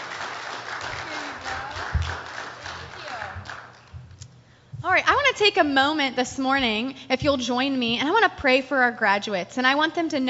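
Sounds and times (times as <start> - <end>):
crowd applauding: 0.0 - 3.9
speech: 5.0 - 10.2.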